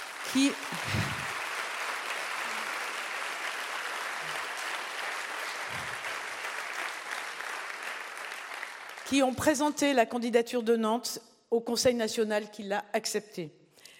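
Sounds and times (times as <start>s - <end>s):
audience applause at a congress: 0.0s - 9.2s
speech: 0.4s - 1.3s, 9.1s - 13.6s.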